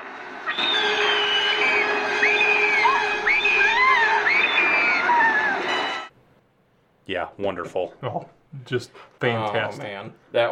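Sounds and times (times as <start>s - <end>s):
steady rushing background: 0.0s - 6.1s
man screaming in fright: 2.4s - 5.8s
speech: 7.1s - 10.5s.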